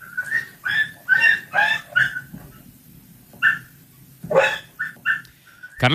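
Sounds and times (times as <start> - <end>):
dog yelping while being beaten: 0.0 - 2.6, 3.3 - 5.8.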